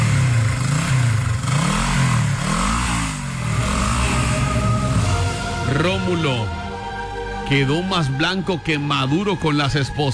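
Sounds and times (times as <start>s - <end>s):
motorcycle taxi engine revving and accelerating: 0.0s - 5.8s
speech: 5.8s - 6.6s, 7.5s - 10.1s.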